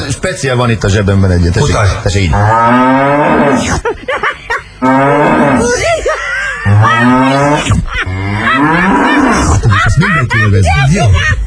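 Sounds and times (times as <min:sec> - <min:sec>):
speech: 0:00.1 - 0:04.2, 0:04.8 - 0:06.0, 0:06.8 - 0:07.8, 0:10.5 - 0:11.4
cow mooing: 0:02.3 - 0:03.7, 0:04.8 - 0:05.7, 0:06.7 - 0:09.6
laughter: 0:03.6 - 0:04.8, 0:05.6 - 0:11.4.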